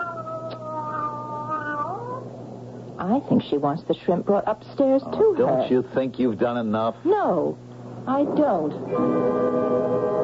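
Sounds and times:
cat meowing: 0.0 - 2.2
speech: 3.0 - 9.7.

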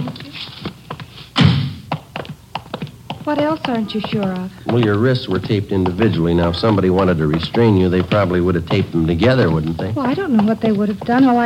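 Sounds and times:
door being opened with a heavy resonant thud: 1.4 - 1.8
speech: 3.2 - 11.4.

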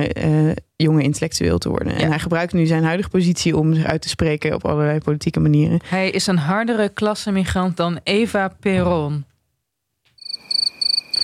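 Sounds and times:
speech: 0.0 - 9.3
crickets chirping: 10.2 - 11.2.

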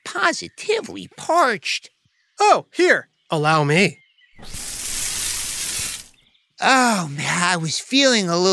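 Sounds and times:
speech: 0.2 - 4.6, 6.6 - 8.5
water poured in a steady stream for a plant: 4.4 - 6.2.

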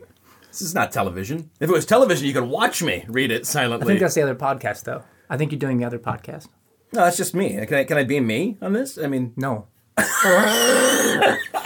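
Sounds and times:
speech: 0.6 - 11.6
raspy wheezing cough: 10.0 - 11.6.

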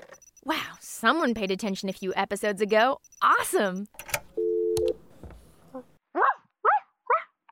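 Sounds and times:
speech: 0.5 - 4.1
dog barking: 6.2 - 7.4.

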